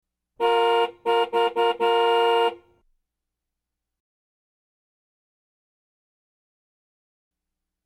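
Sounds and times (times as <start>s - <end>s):
car horn honks: 0.4s - 2.8s.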